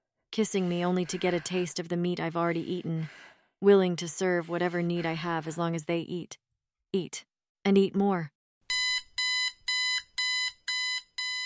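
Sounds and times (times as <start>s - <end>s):
speech: 0.4s - 8.4s
loud shrill electronic alarm blaring in harsh pulses: 8.7s - 11.4s.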